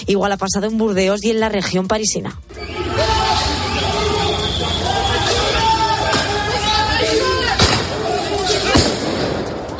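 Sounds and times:
speech: 0.0s - 3.2s
protesters crowd shouting during riot street clashes with police: 2.6s - 9.7s.

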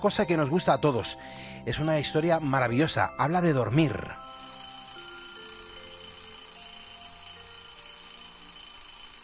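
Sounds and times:
speech: 0.0s - 4.4s
alarm clock ringing with a metallic jangle: 4.1s - 9.2s.

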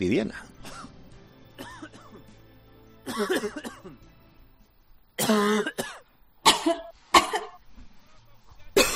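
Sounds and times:
speech: 0.0s - 0.8s, 3.1s - 4.0s, 5.2s - 5.9s, 6.6s - 6.9s
harsh coughing: 0.6s - 1.0s, 1.6s - 2.2s, 3.0s - 4.0s, 5.2s - 7.6s, 8.8s - 8.9s.

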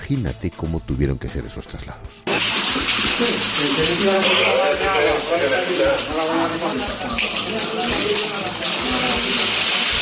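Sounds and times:
speech: 0.1s - 2.6s, 3.2s - 9.2s
water gushing inside flooded building floor after firefighting: 2.3s - 10.0s
murmuring voices: 2.8s - 9.7s.

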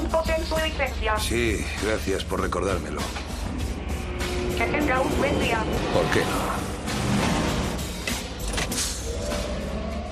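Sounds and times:
speech: 0.6s - 3.3s, 4.6s - 7.2s
futuristic flying car engine humming and whooshing: 3.0s - 10.1s.

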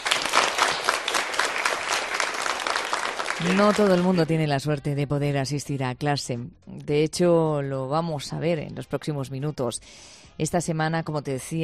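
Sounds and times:
class clapping to welcome a new classmate: 0.0s - 4.2s
speech: 3.4s - 11.6s.

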